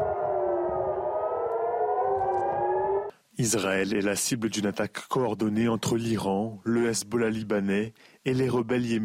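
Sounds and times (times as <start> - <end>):
air raid warning sirens wailing: 0.0 - 3.1
speech: 3.4 - 9.0.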